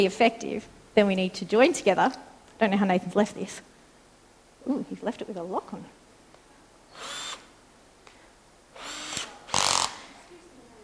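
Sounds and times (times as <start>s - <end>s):
speech: 0.0s - 3.7s, 4.6s - 6.0s
power drill whirring: 6.9s - 7.5s, 8.7s - 10.2s.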